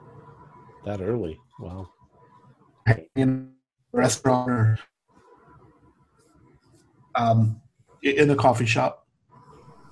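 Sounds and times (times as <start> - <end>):
speech: 0.8 - 2.0, 2.9 - 4.9, 7.2 - 9.0
garbled breaking-up phone call audio: 0.9 - 1.8, 2.9 - 4.8, 7.2 - 8.9.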